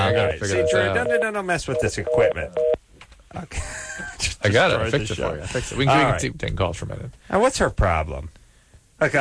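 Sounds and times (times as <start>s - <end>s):
telephone line tone beeps after a hang-up: 0.1s - 2.8s
speech: 0.3s - 3.7s, 4.4s - 8.4s.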